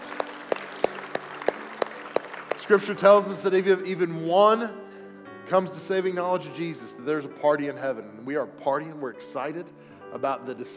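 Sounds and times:
soft continuous crowd noise: 0.0 - 2.9
audience clapping in a steady rhythm: 0.0 - 3.4
speech: 2.7 - 4.8, 5.5 - 10.7.

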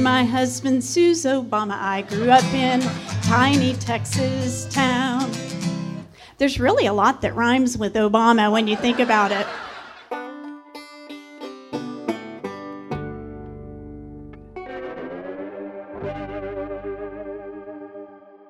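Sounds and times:
speech: 0.0 - 5.4, 6.4 - 9.6
laughter: 1.9 - 3.8, 8.6 - 10.2
bright effect-heavy synth or guitar chords: 2.0 - 6.1, 10.1 - 18.4.

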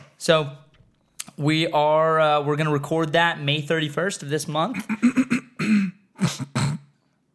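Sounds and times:
speech: 0.2 - 0.6, 1.4 - 5.8
person clearing their throat with rough raspy bursts: 4.8 - 7.1.

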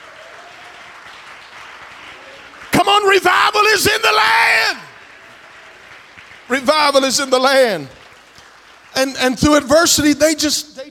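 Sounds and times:
audience clapping hands: 0.0 - 9.9
speech: 3.0 - 4.9, 6.5 - 8.0, 9.0 - 10.8.

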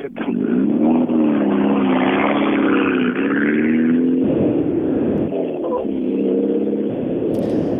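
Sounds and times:
Mitsubishi rally car engine accelerating through gear changes: 0.0 - 7.7.

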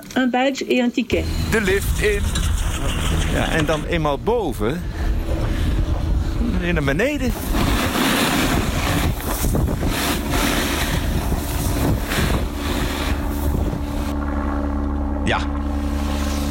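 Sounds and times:
speech: 0.2 - 5.0, 6.6 - 7.7
helicopter roaring overhead with deep engine hum: 1.1 - 16.4.

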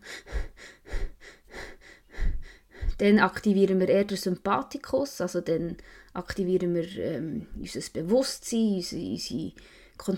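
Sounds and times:
rapid shallow panting breathing: 0.0 - 3.1, 5.8 - 6.2
speech: 3.0 - 10.1.

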